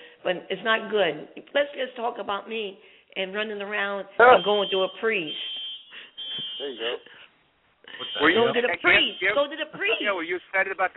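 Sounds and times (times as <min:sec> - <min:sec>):
speech: 0:00.2 - 0:05.5, 0:06.6 - 0:07.2, 0:08.0 - 0:10.9
fire alarm high-pitched electronic tone: 0:04.3 - 0:07.2, 0:07.9 - 0:10.0.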